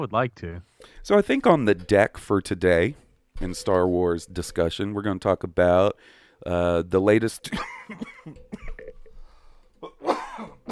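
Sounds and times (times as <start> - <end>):
speech: 0.0 - 8.5
person coughing and clearing throat: 7.5 - 8.9, 9.8 - 10.6.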